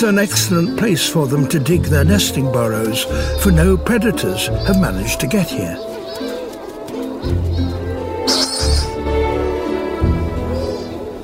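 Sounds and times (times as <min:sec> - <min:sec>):
speech: 0:00.0 - 0:06.2
low throaty shearwater hoots: 0:03.0 - 0:11.2
deep moaning shearwater calls: 0:05.8 - 0:09.7.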